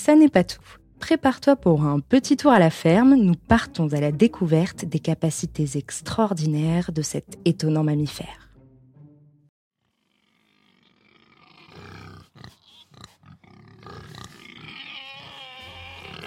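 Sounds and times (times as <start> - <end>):
speech: 0.0 - 8.4
pig grunting and snorting: 9.9 - 16.2.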